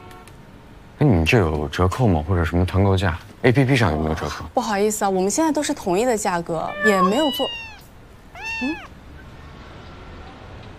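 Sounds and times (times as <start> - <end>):
speech: 1.2 - 7.6, 8.6 - 8.9
guest's cat meowing at a hotel front desk: 6.6 - 9.0.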